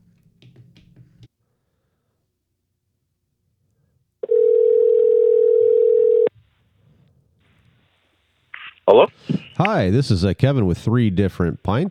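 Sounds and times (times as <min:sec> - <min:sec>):
steady telephone tone: 0:04.2 - 0:06.3
speech: 0:08.9 - 0:11.8.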